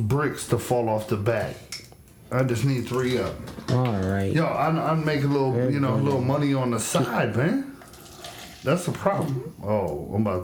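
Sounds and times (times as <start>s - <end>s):
speech: 0.0s - 1.7s, 2.3s - 7.7s, 8.6s - 10.4s
liquor pouring into a glass: 7.3s - 9.6s.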